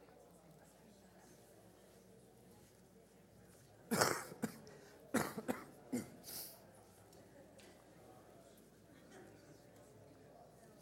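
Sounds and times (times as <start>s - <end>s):
faint room murmur: 0.0s - 10.7s
person coughing dry harsh coughs: 3.9s - 4.6s, 5.2s - 6.2s.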